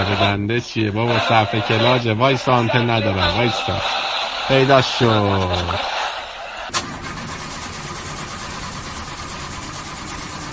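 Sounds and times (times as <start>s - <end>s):
speech: 0.0s - 6.1s
laughter: 0.0s - 6.8s
car engine cranking without starting: 6.7s - 10.5s.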